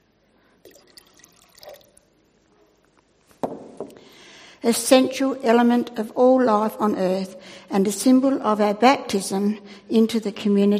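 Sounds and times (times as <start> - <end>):
water pouring into a vessel: 0.6 - 2.1
speech: 4.6 - 10.7.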